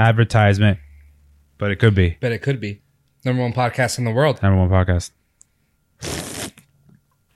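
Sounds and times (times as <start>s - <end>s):
speech: 0.0s - 0.8s, 1.6s - 5.2s, 6.0s - 6.3s
person slurping a drink: 6.0s - 6.6s.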